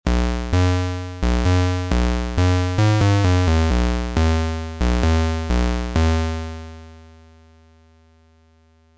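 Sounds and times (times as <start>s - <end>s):
bass sound: 0.1s - 6.4s.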